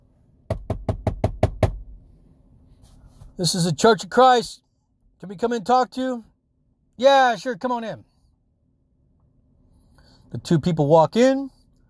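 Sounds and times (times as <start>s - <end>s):
knocking on a door: 0.5s - 1.8s
speech: 3.4s - 4.6s, 5.2s - 6.3s, 7.0s - 8.1s, 10.3s - 11.6s.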